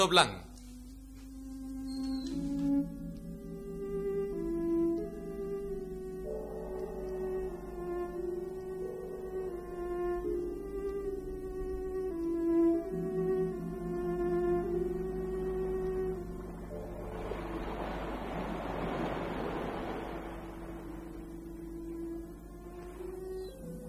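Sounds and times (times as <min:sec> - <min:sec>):
speech: 0:00.0 - 0:00.4
steady sustained musical tones: 0:00.0 - 0:23.8
sea wave washing: 0:15.8 - 0:23.2.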